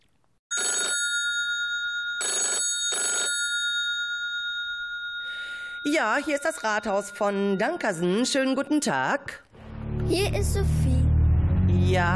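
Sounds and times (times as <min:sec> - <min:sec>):
loud telephone bell ringing in short metallic bursts: 0:00.5 - 0:08.9
speech: 0:05.8 - 0:09.4, 0:10.1 - 0:10.9, 0:11.8 - 0:12.1.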